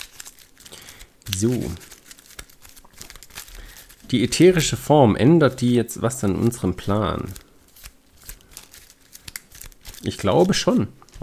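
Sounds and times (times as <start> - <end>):
deck of cards being shuffled: 0.0 - 11.2
speech: 1.3 - 1.9, 4.1 - 7.4, 10.1 - 11.2.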